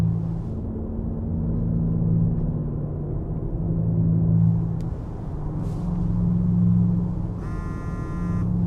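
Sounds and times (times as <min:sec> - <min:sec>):
black sedan engine rumbling while driving through city streets in Tehran: 0:00.0 - 0:08.6
short electronic buzzing tone: 0:07.4 - 0:08.6.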